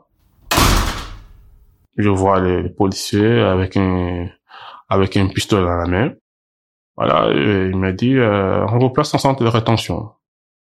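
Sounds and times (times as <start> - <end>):
single heavy door slamming shut: 0.4 - 1.7
speech: 2.0 - 6.2, 7.0 - 10.2.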